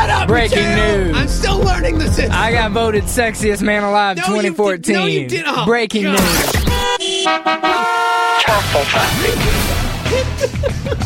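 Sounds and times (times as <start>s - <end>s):
laughter: 0.0s - 2.4s, 8.5s - 11.0s
speech: 0.3s - 11.0s
loud car horns honking: 6.2s - 8.8s.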